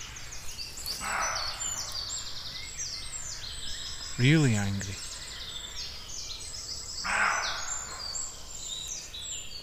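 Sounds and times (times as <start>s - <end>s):
birds chirping: 0.0s - 9.6s
roe deer barking: 1.0s - 2.0s
speech: 4.2s - 5.1s.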